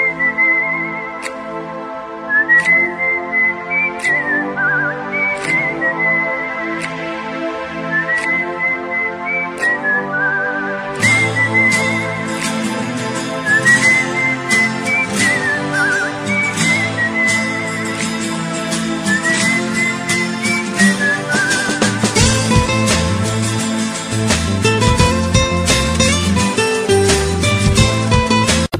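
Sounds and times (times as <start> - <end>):
whistling: 0.0 - 1.4, 2.3 - 6.9, 7.8 - 12.6, 13.2 - 22.8
guitar: 0.0 - 28.7.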